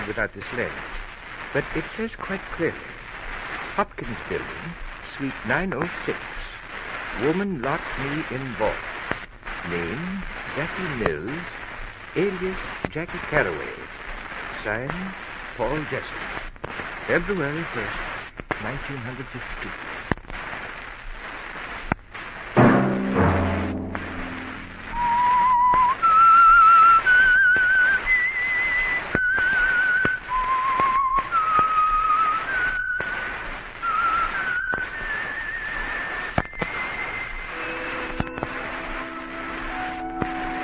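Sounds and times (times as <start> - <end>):
speech: 0.1 - 3.0, 3.8 - 6.5, 7.1 - 8.9, 9.6 - 11.6, 12.2 - 13.9, 14.6 - 19.9
soft orchestral backing: 22.6 - 25.5
whistled theme melody of a radio program: 24.9 - 33.0, 33.8 - 40.6.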